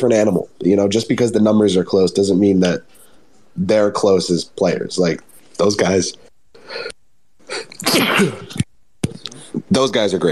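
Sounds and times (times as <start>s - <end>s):
speech: 0.0s - 3.0s, 3.6s - 8.6s, 9.7s - 10.3s
person sneezing: 7.5s - 8.6s.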